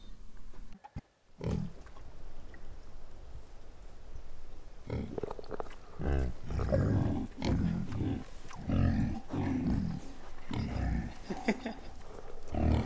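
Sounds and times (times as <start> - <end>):
pig grunting: 1.4 - 1.8, 4.8 - 12.8
laughter: 10.9 - 12.3.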